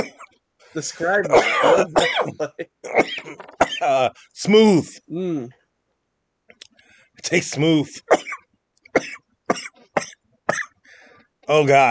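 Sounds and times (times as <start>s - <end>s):
person coughing fit after a smoke hit: 0.0s - 0.4s, 1.2s - 4.0s, 8.1s - 10.8s
speech: 0.0s - 5.6s, 7.2s - 8.2s, 11.5s - 11.8s.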